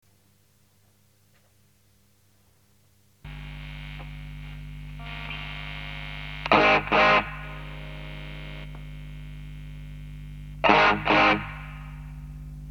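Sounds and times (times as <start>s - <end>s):
guitar through noise suppressor pedal: 3.3s - 12.7s.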